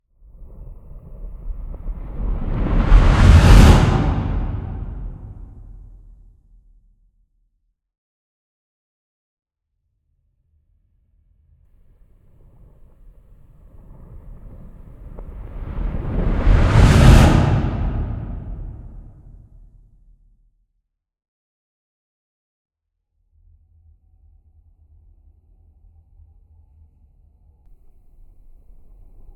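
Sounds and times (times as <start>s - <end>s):
reverse explosion: 2.0s - 5.8s, 12.2s - 19.6s.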